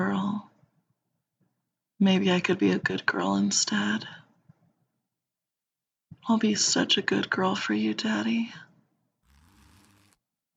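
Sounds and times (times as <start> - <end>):
speech: 2.0 - 4.2, 6.2 - 8.6
clothing zipper being undone: 9.2 - 10.3.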